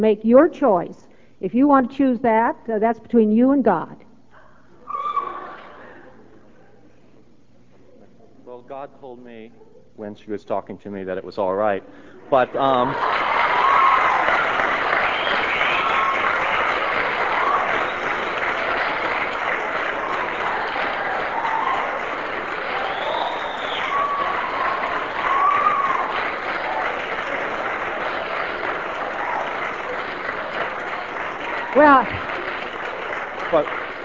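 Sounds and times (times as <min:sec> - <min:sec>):
speech: 0:00.0 - 0:04.0, 0:08.7 - 0:13.3
audience applause from a crowd: 0:12.3 - 0:34.0.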